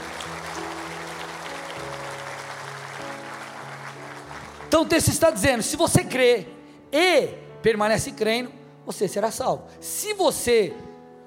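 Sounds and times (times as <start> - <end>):
large church audience applauding during a sermon: 0.0 - 5.4
speech: 4.8 - 10.9.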